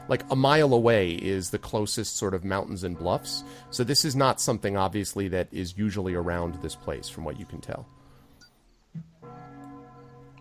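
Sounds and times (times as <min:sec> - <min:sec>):
church bell ringing: 0:00.0 - 0:08.4, 0:09.2 - 0:10.4
speech: 0:00.1 - 0:08.0.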